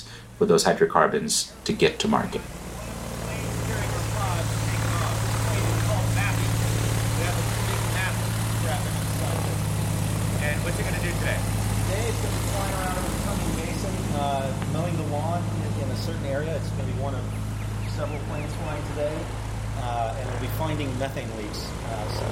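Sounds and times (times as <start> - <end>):
propeller plane engine roaring during takeoff from the airport in Odessa Texas: 0.0 - 22.3
speech: 0.4 - 2.7.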